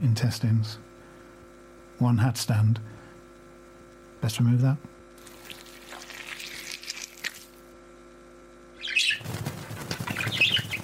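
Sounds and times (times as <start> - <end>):
speech: 0.0 - 0.9, 2.0 - 3.0, 4.2 - 4.9
faint bird chirps: 8.7 - 9.3, 10.0 - 10.8
birds wings flapping: 8.9 - 10.8.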